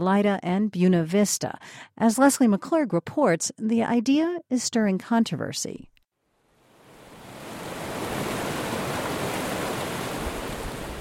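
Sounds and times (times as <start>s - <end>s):
speech: 0.0s - 5.9s
Arkansas River rushing between high granite walls in Browns Canyon Colorado: 6.6s - 10.9s.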